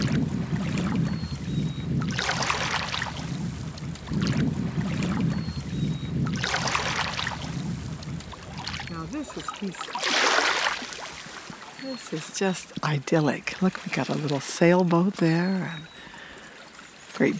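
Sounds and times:
low steady rumble: 0:00.0 - 0:09.8
gentle water lapping against a small shoreline: 0:00.0 - 0:17.3
light wind: 0:00.0 - 0:17.3
speech: 0:09.4 - 0:10.2, 0:11.9 - 0:15.9, 0:17.2 - 0:17.3.

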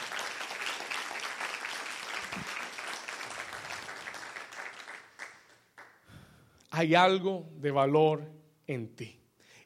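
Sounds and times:
audience applauding: 0:00.0 - 0:06.0
speech: 0:06.8 - 0:09.2.

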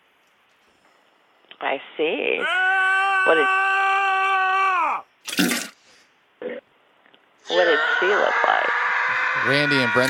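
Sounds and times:
speech: 0:01.6 - 0:03.8, 0:09.4 - 0:10.0
people screaming in another room: 0:02.4 - 0:05.0, 0:07.4 - 0:10.0.

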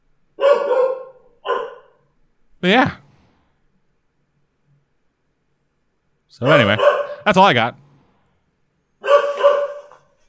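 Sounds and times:
pet dog barking: 0:00.4 - 0:02.0, 0:06.4 - 0:07.2, 0:09.0 - 0:10.2
speech: 0:02.6 - 0:03.0, 0:06.4 - 0:07.8.

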